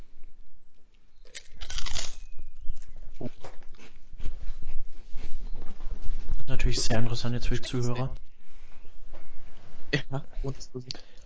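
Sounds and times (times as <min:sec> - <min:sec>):
crackly rustling of a crinkling bag: 0:00.7 - 0:11.1
prawn crackers being chewed: 0:00.8 - 0:04.0
speech: 0:06.7 - 0:08.2, 0:09.9 - 0:11.1.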